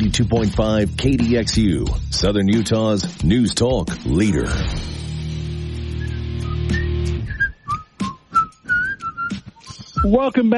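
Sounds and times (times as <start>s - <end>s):
loud full theme music track: 0.0s - 10.2s
speech: 0.1s - 5.0s, 10.0s - 10.5s
person whistling a tune: 6.0s - 10.2s.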